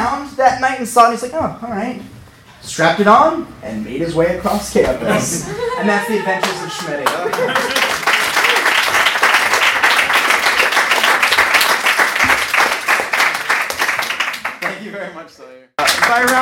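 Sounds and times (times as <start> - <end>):
speech: 0.4 - 7.9, 15.2 - 16.4
laughter: 5.0 - 8.9
crowd applause: 6.1 - 14.9, 15.8 - 16.4.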